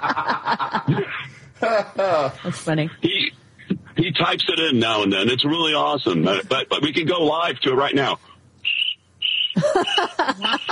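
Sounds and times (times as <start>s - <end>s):
laughter: 0.0s - 2.5s, 9.6s - 10.6s
speech: 2.2s - 3.2s, 4.2s - 8.3s, 9.6s - 10.6s
crickets chirping in high-pitched trills: 8.6s - 10.6s.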